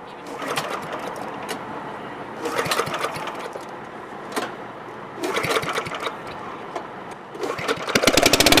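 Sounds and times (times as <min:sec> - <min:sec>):
tractor engine and hydraulics starting up to lift boat: 0:00.0 - 0:08.5.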